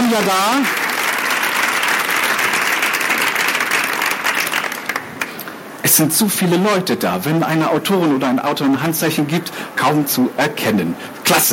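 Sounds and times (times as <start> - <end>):
large audience applauding: 0.0 - 5.4
speech: 0.1 - 0.8, 5.8 - 11.5.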